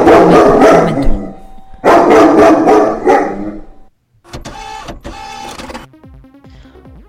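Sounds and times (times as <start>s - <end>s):
female dog barking and snarling aggressively with a hoarse voice: 0.0s - 1.3s, 1.9s - 3.6s.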